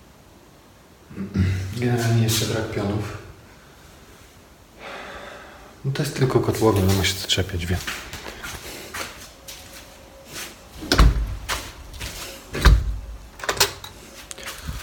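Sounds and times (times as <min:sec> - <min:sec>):
speech: 0:01.3 - 0:03.2, 0:05.8 - 0:08.1
door thumping shut: 0:10.8 - 0:11.7, 0:12.5 - 0:13.6
door installed with a gap opening and closing: 0:10.8 - 0:14.0
door rattling clicks: 0:12.5 - 0:14.0.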